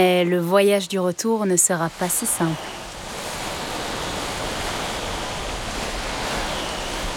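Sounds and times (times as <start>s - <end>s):
speech: 0.0s - 2.8s
open sea waves churning: 1.8s - 7.1s
strong wind over open sea: 1.9s - 7.1s.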